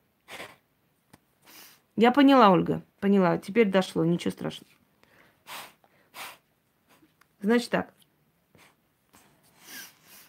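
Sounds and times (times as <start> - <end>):
quick nasal sniffs: 0.2 - 0.6, 1.4 - 1.8, 5.4 - 7.1, 8.6 - 10.2
speech: 2.0 - 4.8, 7.4 - 8.0.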